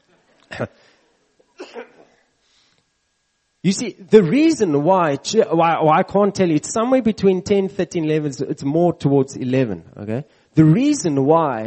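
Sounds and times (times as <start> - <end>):
person coughing: 0.5 - 0.8, 1.6 - 2.3
speech: 0.5 - 1.0, 3.6 - 11.6.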